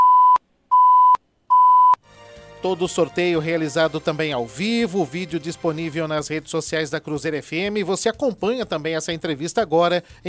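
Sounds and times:
electronic warning beeps signalling ten seconds left in a live radio interview: 0.0s - 2.0s
speech: 2.6s - 10.2s.

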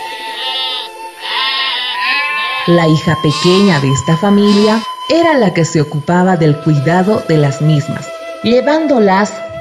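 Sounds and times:
sheep bleating loudly: 0.0s - 5.0s
speech: 2.6s - 9.4s.

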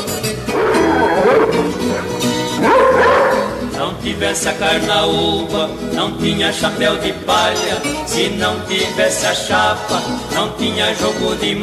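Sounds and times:
dense busy noise: 0.0s - 3.8s
dog yelping and whining: 0.5s - 3.7s
speech: 4.2s - 11.6s.

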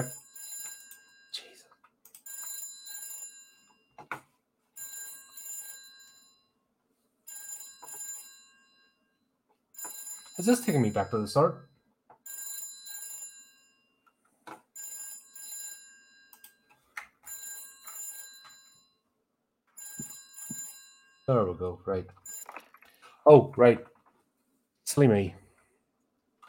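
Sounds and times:
old-fashioned telephone bell ringing: 0.0s - 1.6s, 2.2s - 6.6s, 7.2s - 19.1s, 19.7s - 21.6s, 22.2s - 22.9s
speech: 10.4s - 11.7s, 21.6s - 22.3s, 23.2s - 23.9s, 25.0s - 25.4s.

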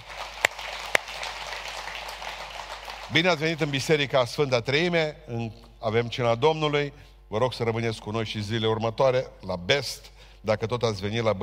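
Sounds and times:
sharper closer hand claps: 0.0s - 3.2s
audience applauding: 0.0s - 3.8s
speech: 3.1s - 11.4s.

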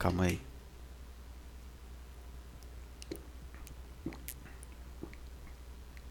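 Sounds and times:
speech: 0.0s - 0.5s
steady low hiss: 0.0s - 6.1s
person sipping and swallowing water: 3.0s - 6.1s.

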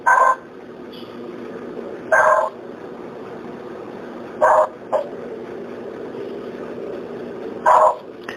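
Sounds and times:
steady low hum: 0.0s - 8.3s
distant dog barking: 2.1s - 2.5s, 4.4s - 5.1s, 7.6s - 8.1s.

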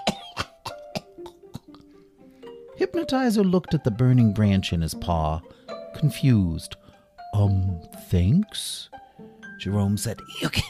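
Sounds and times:
harsh raspy wheezy coughing: 0.0s - 1.9s, 10.3s - 10.6s
speech: 2.8s - 9.0s, 9.6s - 10.6s.

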